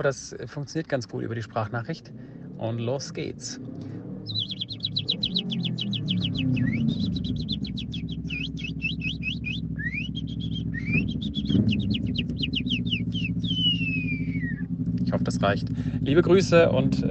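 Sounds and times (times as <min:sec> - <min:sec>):
speech: 0:00.0 - 0:04.4, 0:05.4 - 0:07.8, 0:11.0 - 0:12.8, 0:15.1 - 0:17.0
motorcycle idling with low rumble: 0:01.5 - 0:17.0
person imitating bird chirping in a voice message: 0:04.2 - 0:14.6.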